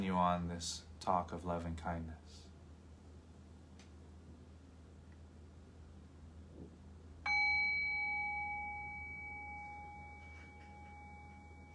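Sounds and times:
speech: 0.0s - 2.5s
meditation bell ringing: 7.3s - 11.7s.

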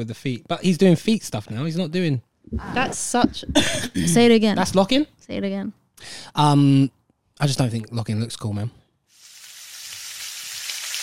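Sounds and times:
speech: 0.0s - 8.8s
fajitas sizzling on a hot skillet: 9.1s - 11.0s.

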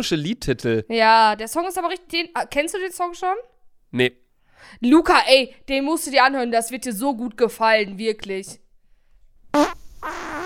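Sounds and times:
speech: 0.0s - 8.6s, 9.5s - 10.2s
loud sputtering fart: 9.5s - 10.4s.

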